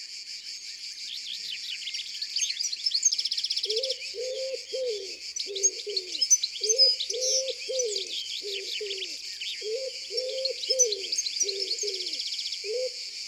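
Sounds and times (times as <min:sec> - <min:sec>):
dense chorus of songbirds chirping and twittering: 0:00.1 - 0:13.2
common wood pigeon cooing: 0:03.7 - 0:13.0.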